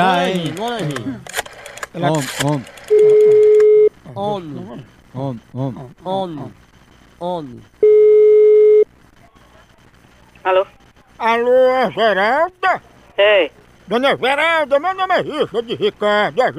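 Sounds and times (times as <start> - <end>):
speech: 0.0 - 1.4, 2.0 - 3.4, 4.1 - 7.8, 10.4 - 16.5
ringback tone of an outgoing telephone call: 2.9 - 3.9, 7.8 - 8.8.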